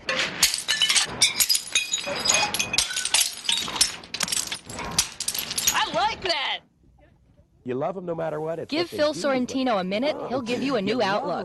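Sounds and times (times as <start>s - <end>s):
ceramic plates being smashed: 0.0s - 6.4s
ceramic shards clinking and scattering: 0.0s - 6.4s
speech: 7.7s - 11.4s.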